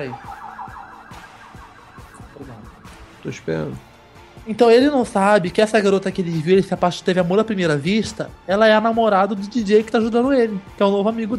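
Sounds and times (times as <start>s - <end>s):
speech: 0.0s - 0.4s, 3.2s - 11.3s
ambulance siren wailing outside: 0.0s - 4.1s.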